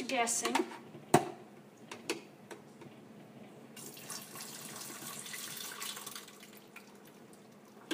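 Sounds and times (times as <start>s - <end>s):
speech: 0.1s - 0.8s
water pouring into a coffee maker reservoir: 3.8s - 7.8s.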